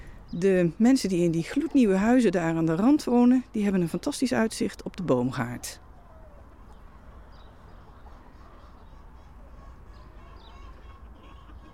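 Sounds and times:
speech: 0:00.3 - 0:05.8
chickens clucking: 0:05.6 - 0:11.7.

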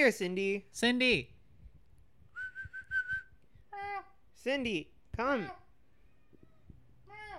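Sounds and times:
speech: 0:00.0 - 0:01.3, 0:04.4 - 0:05.6
soft low thumps: 0:01.5 - 0:03.4.

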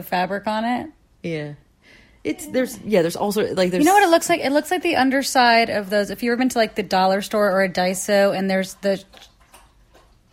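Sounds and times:
speech: 0:00.0 - 0:09.3
dog lapping drinking water: 0:06.7 - 0:10.3.

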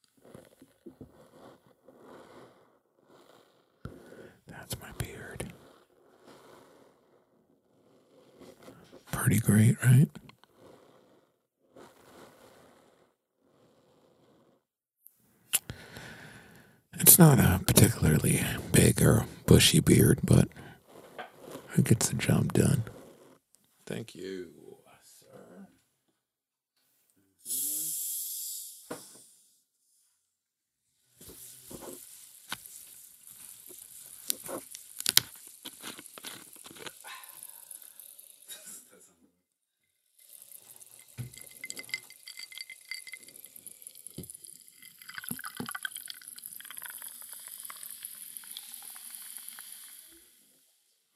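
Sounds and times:
speech: 0:09.3 - 0:10.2, 0:18.2 - 0:20.6, 0:21.8 - 0:23.0, 0:23.9 - 0:24.6
soda water being poured and fizzing: 0:17.0 - 0:20.8, 0:31.2 - 0:38.7, 0:40.1 - 0:50.6.

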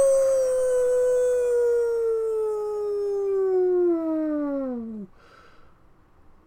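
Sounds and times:
howling wail: 0:00.0 - 0:05.1.

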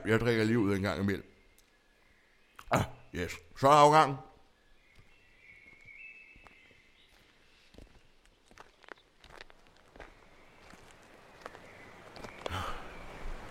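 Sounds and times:
speech: 0:00.0 - 0:01.3, 0:02.7 - 0:04.3
footsteps crunching on rough ground: 0:04.4 - 0:13.5.

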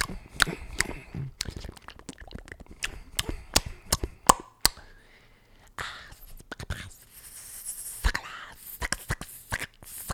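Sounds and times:
person chewing: 0:00.0 - 0:04.9
wet mouth clicks: 0:00.0 - 0:04.9, 0:06.1 - 0:10.1
soft breathy hiss: 0:02.9 - 0:10.1.

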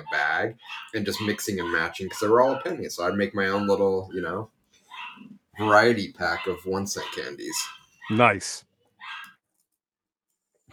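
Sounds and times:
single sharp dog bark: 0:00.0 - 0:04.2, 0:04.9 - 0:08.2, 0:09.0 - 0:09.4
speech: 0:00.0 - 0:04.6, 0:05.2 - 0:09.2.

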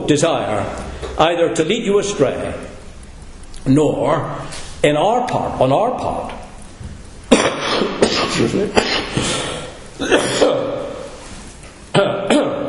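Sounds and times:
speech: 0:00.1 - 0:02.7, 0:03.6 - 0:06.4, 0:08.4 - 0:09.4
man coughing repeatedly during a sermon: 0:07.3 - 0:10.9, 0:12.0 - 0:12.6.

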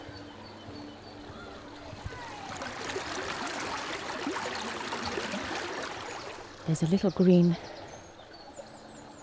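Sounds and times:
river water rushing over stone steps: 0:02.0 - 0:06.6
speech: 0:06.7 - 0:07.7.

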